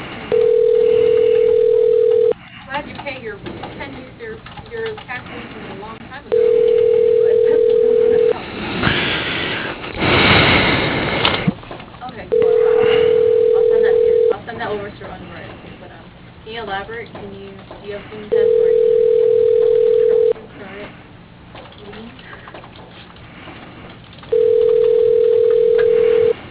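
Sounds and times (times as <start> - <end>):
noise: 0.0 - 26.4
telephone ringing an office extension: 0.3 - 2.4, 6.3 - 8.4, 12.3 - 14.4, 18.3 - 20.4, 24.3 - 26.4
people talking: 2.7 - 8.4, 12.0 - 21.0, 21.8 - 22.5.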